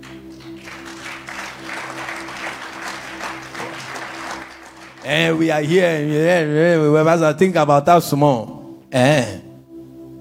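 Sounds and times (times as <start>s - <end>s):
audience applauding: 0.0s - 6.3s
speech: 5.0s - 9.4s.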